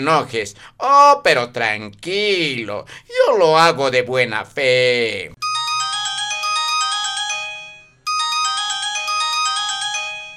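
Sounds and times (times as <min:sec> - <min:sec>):
speech: 0:00.0 - 0:05.4
bright melodic phone ringtone of an incoming call: 0:05.4 - 0:10.3.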